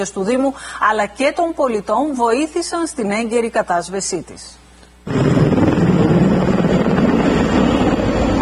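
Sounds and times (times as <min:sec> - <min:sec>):
speech: 0:00.0 - 0:06.2
firefighting helicopter flying overhead: 0:05.1 - 0:08.4.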